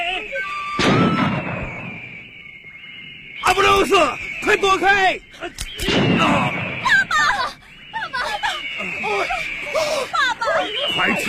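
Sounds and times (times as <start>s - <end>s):
people shouting: 0.0s - 1.7s, 3.4s - 11.2s
gunshot: 0.8s - 2.3s, 5.7s - 6.9s
speech: 3.6s - 6.6s
laughter: 7.1s - 11.2s.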